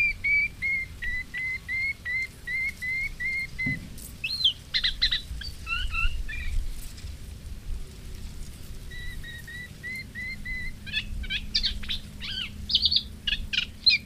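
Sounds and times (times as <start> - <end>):
moustached warbler song of clear whistled notes: 0.0 - 6.6, 8.9 - 14.0.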